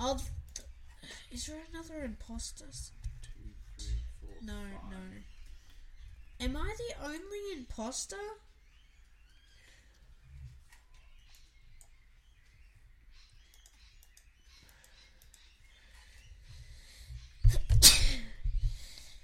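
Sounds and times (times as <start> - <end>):
faint chirping: 0.0 - 19.2
speech: 0.1 - 0.4, 1.3 - 3.0, 4.3 - 5.3, 6.4 - 8.5
loud sneeze: 17.7 - 18.4.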